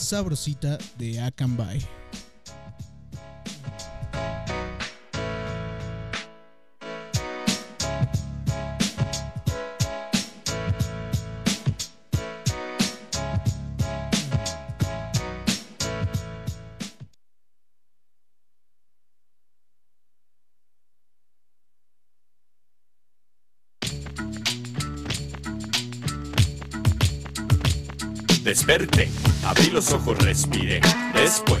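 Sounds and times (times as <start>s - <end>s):
speech: 0.0s - 2.1s, 28.7s - 31.5s
rhythmic instrumental song intro with punchy beats: 0.0s - 17.1s, 23.8s - 31.5s.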